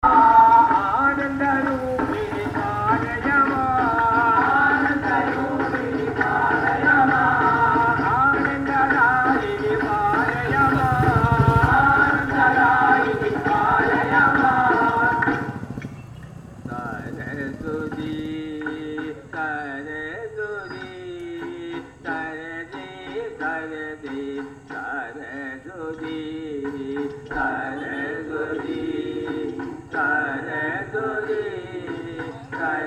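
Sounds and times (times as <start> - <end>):
Hindu chants in a street in South India: 0.0 - 32.8.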